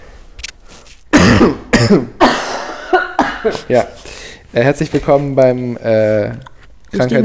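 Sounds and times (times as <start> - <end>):
loud harsh coughs into the microphone: 1.1 - 3.7
speech: 1.4 - 2.3, 3.4 - 7.2.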